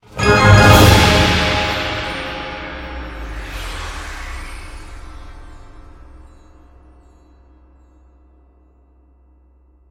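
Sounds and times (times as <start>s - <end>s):
game win jingle: 0.0s - 3.3s.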